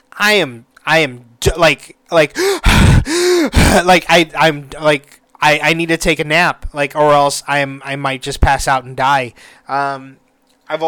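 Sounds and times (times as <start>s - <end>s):
speech: 0.2s - 10.8s
person imitating heavy panting after running up and down stairs: 2.4s - 3.8s.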